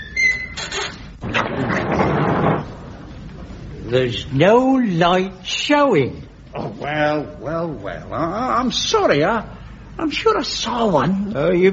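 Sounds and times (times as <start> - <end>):
door creaking on hinges: 0.0 - 3.1
speech: 3.9 - 11.7.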